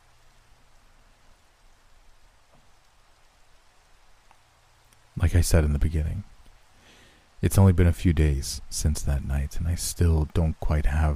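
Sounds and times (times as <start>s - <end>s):
steady rain falling: 0.0s - 11.1s
speech: 5.2s - 6.3s, 7.4s - 11.1s.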